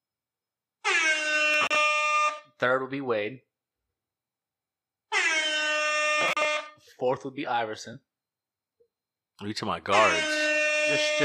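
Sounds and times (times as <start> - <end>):
air horn blast: 0.8 - 2.4, 5.1 - 6.8, 9.9 - 11.2
speech: 2.6 - 3.5, 7.0 - 8.1, 9.4 - 11.2.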